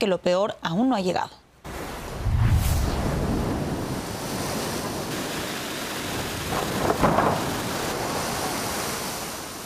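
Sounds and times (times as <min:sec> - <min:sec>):
speech: 0:00.0 - 0:01.4, 0:06.6 - 0:07.6
strong ocean waves crashing against a boardwalk: 0:01.6 - 0:09.6
heavy booming wave impacts: 0:02.1 - 0:04.3.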